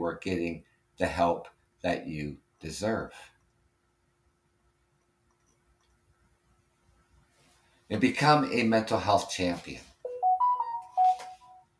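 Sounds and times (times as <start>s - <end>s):
speech: 0.0s - 3.3s, 7.9s - 9.9s
short electronic phone ringtone: 10.1s - 11.7s.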